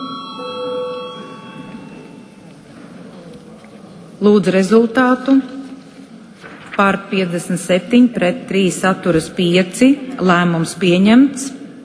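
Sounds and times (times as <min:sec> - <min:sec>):
parliament chamber bell ringing before vote: 0:00.0 - 0:02.6
speech: 0:04.2 - 0:05.5, 0:06.8 - 0:11.6.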